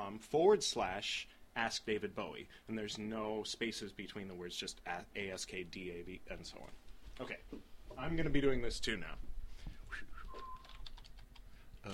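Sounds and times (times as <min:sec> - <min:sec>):
speech: 0:00.0 - 0:09.3
faint chirpy whistles: 0:09.9 - 0:10.9
typing on a computer keyboard: 0:10.6 - 0:11.9.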